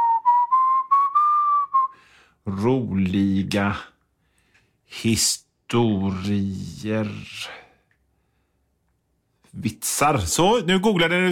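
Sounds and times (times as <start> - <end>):
person whistling a short tune while waiting: 0.0 - 2.0
speech: 2.4 - 3.9, 4.9 - 7.6, 9.5 - 11.3.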